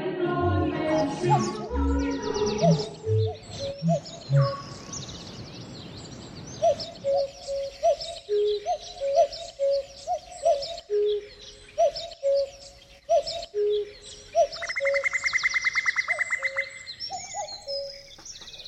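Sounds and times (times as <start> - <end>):
skylark singing rapid continuous high warbling song: 0.2 - 18.6
cuckoo two-note call: 0.4 - 4.8, 6.7 - 15.2.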